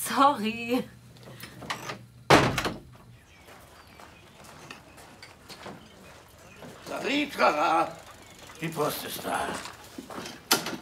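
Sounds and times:
speech: 0.2s - 1.0s, 7.0s - 8.0s, 8.6s - 10.4s
door shutting with a loud thud and short rattle: 1.7s - 3.0s.

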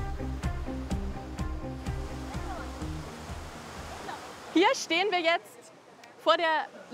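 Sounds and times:
water tumbling down a baroque cascade of more than 530 steps: 0.2s - 5.4s
speech: 4.6s - 5.5s, 6.2s - 6.9s.

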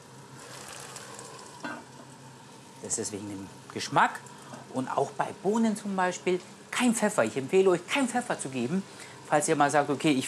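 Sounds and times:
butter sizzling in a cooking pot of boiling food: 0.0s - 2.8s
speech: 2.8s - 10.2s.

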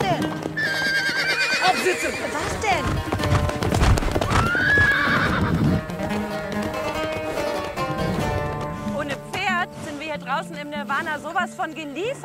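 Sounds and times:
hooves clip-clopping: 0.0s - 12.2s
horse whinnying: 0.5s - 6.5s
speech: 10.4s - 12.2s.

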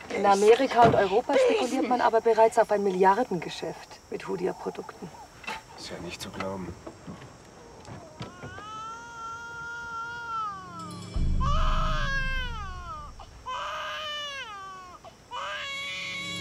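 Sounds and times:
speech: 0.1s - 5.2s, 5.8s - 7.3s
baby girl wailing: 8.0s - 16.3s
low rumbling background: 11.2s - 13.6s.

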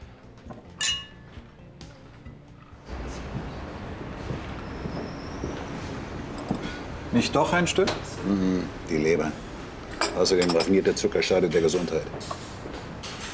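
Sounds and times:
glasses clinking in a toast: 0.5s - 1.6s, 6.3s - 6.7s, 9.9s - 11.1s
speech: 7.1s - 9.5s, 10.2s - 12.4s.

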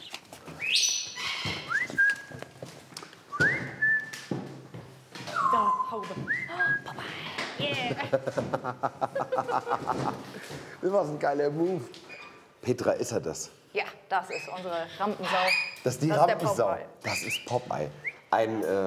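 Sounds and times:
birds chirping and whistling: 0.0s - 2.4s, 5.3s - 7.5s, 14.3s - 15.8s, 17.0s - 18.3s
speech: 7.8s - 12.0s, 12.7s - 18.8s
laughter: 8.0s - 10.6s.

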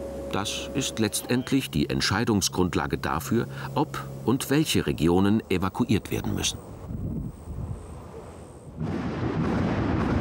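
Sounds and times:
speech: 0.3s - 7.0s
thunder rumbling: 6.7s - 10.1s.

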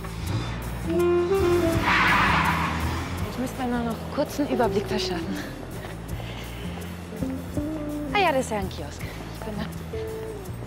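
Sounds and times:
car engine humming and revving as the car pulls away: 0.0s - 6.2s
rushing hiss of tires and air: 0.0s - 7.6s
speech: 3.7s - 5.6s, 8.3s - 10.1s.

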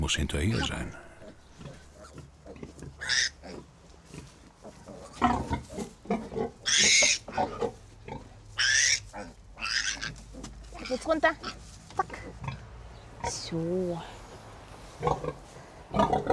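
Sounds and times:
speech: 0.0s - 1.0s, 3.1s - 3.4s, 10.9s - 11.6s, 13.5s - 14.2s
sow grunting and snorting in a pig stable: 0.4s - 13.5s, 15.0s - 16.3s
loud high squeals in a pig stable: 3.0s - 3.6s, 5.0s - 7.8s, 8.6s - 11.6s.

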